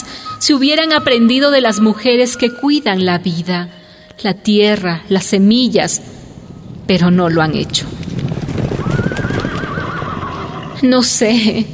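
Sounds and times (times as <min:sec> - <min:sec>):
speech: 0:00.4 - 0:06.2, 0:06.9 - 0:08.2, 0:10.8 - 0:11.7
horses galloping in the distance with drumming hoofbeats: 0:06.0 - 0:11.4
horses neighing in the distance: 0:07.9 - 0:10.8.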